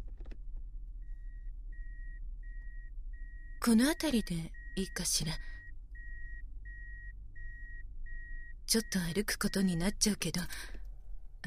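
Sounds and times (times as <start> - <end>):
car engine rumble as it pulls over and stops: 0.0 - 11.4
electronic beeps: 1.0 - 9.9
speech: 3.6 - 5.6, 8.7 - 10.8.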